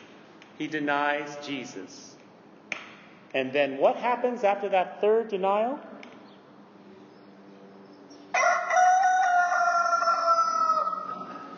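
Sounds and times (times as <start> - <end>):
speech: 0.6 - 2.2, 3.3 - 5.9
rooster crowing: 8.3 - 11.5.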